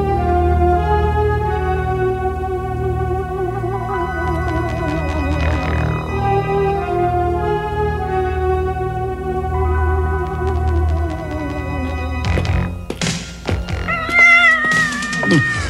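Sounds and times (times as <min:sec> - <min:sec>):
steady droning tone: 0:00.0 - 0:13.9
cat howling: 0:13.8 - 0:15.6.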